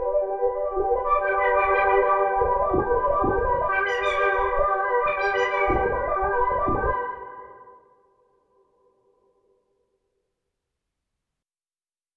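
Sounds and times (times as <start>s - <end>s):
foggy arpeggio: 0.1s - 7.6s.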